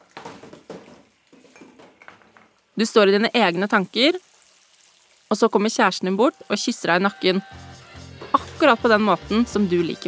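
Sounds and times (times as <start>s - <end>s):
running water in a kitchen: 0.0s - 7.5s
plates and cutlery clinking while dishes are washed in a kitchen: 0.7s - 2.5s
speech: 2.8s - 4.3s, 5.3s - 7.6s, 8.6s - 10.0s.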